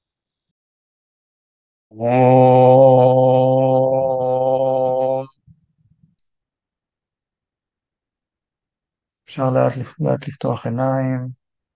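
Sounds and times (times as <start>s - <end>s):
speech: 1.9s - 2.4s, 9.4s - 11.4s
single sustained chanted Om in a low steady voice: 1.9s - 5.4s.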